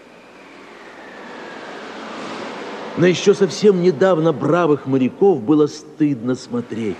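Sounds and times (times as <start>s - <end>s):
wind roaring in a storm at sea: 0.0s - 5.4s
speech: 3.0s - 6.9s.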